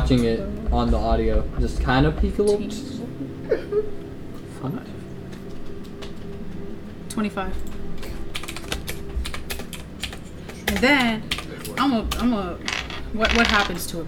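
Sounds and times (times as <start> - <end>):
low hum: 0.0 - 14.0
speech: 0.1 - 3.7, 4.6 - 5.0, 7.2 - 7.8, 10.7 - 14.0
handful of dice clattering on a hard surface: 12.6 - 13.9.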